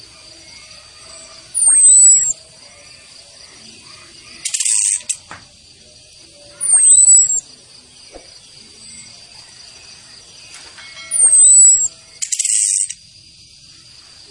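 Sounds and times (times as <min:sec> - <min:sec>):
female thrush harsh crackling chatter: 0:00.0 - 0:13.1
thrush piercing downslurred whistle: 0:01.6 - 0:02.4, 0:06.6 - 0:07.4, 0:11.1 - 0:13.0.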